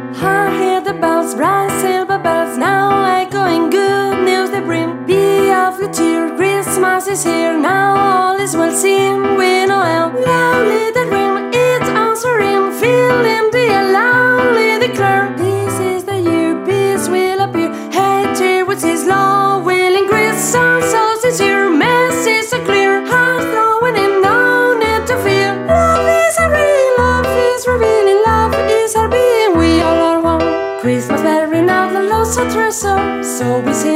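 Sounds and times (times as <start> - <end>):
soprano singing: 0.1 - 33.9.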